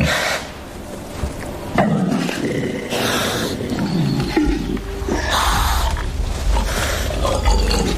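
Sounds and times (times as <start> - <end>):
male wild boars fighting with deep rough roars and grunts: 1.8 - 7.9.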